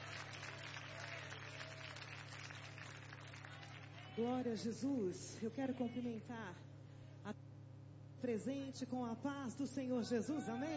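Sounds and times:
congregation applauding: 0:00.0 - 0:04.2
low hum: 0:00.0 - 0:10.7
speech: 0:04.2 - 0:07.4, 0:08.2 - 0:10.7.

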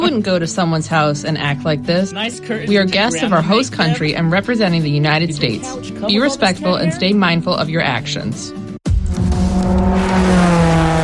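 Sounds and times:
speech: 0:00.0 - 0:08.6
race car engines roaring on a track near the wall: 0:09.5 - 0:11.0.

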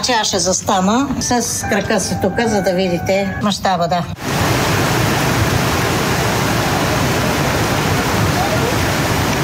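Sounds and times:
speech: 0:00.0 - 0:04.5
floodwater from heavy rain rushing: 0:04.2 - 0:09.4.

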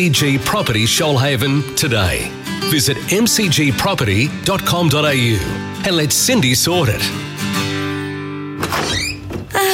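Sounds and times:
speech: 0:00.0 - 0:07.6
door thunking open and shutting with solid knocks on arriving home: 0:08.6 - 0:09.6.

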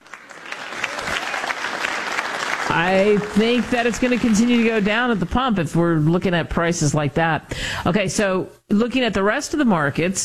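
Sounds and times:
crowd applause: 0:00.0 - 0:05.5
speech: 0:02.8 - 0:10.2.

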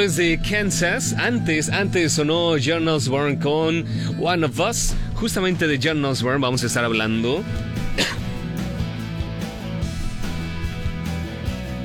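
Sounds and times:
speech: 0:00.0 - 0:08.1
music: 0:00.0 - 0:11.8
person coughing close to the microphone: 0:07.9 - 0:08.5.

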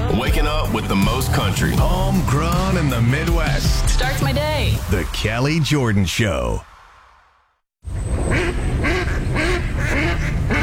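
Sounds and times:
speech: 0:00.2 - 0:06.7
duck quacking: 0:08.3 - 0:10.6.

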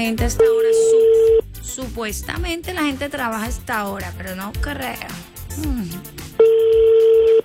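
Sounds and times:
speech: 0:00.0 - 0:06.6
telephone ringback tone while a call is placed: 0:00.4 - 0:01.5, 0:06.4 - 0:07.4.

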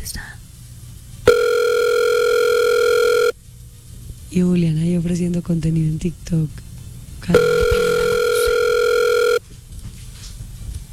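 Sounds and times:
steady electronic telephone tone: 0:01.3 - 0:03.3, 0:07.3 - 0:09.4
speech: 0:04.3 - 0:06.7.

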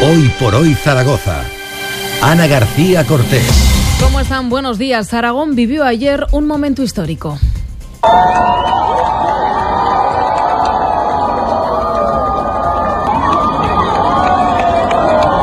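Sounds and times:
speech: 0:00.1 - 0:01.5, 0:02.2 - 0:08.9
large crowd cheering at an eclipse: 0:08.0 - 0:15.4.

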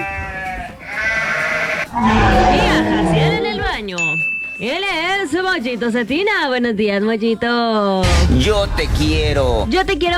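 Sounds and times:
human voice imitating a calf bleating: 0:00.0 - 0:03.9
speech: 0:04.6 - 0:10.1.

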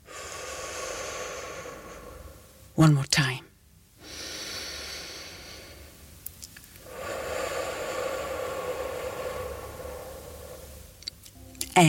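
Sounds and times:
person breathing in and out: 0:00.0 - 0:02.7, 0:04.0 - 0:06.1, 0:06.8 - 0:11.1
speech: 0:02.8 - 0:03.5.

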